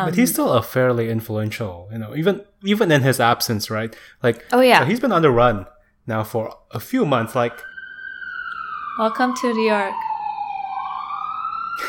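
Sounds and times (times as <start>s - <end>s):
speech: 0.0s - 7.7s, 9.0s - 10.0s
police car siren passing outside: 7.0s - 11.8s.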